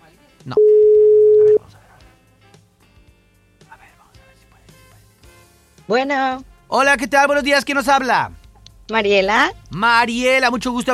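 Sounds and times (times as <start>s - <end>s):
speech: 0.4s - 0.7s, 5.9s - 10.9s
telephone tone as a call is dialed out: 0.6s - 1.6s.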